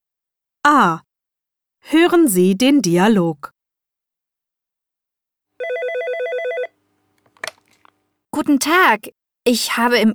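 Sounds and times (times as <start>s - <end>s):
speech: 0.6s - 1.1s, 1.8s - 3.5s, 8.4s - 10.1s
telephone ringing with a warbling electronic trill: 5.6s - 7.9s.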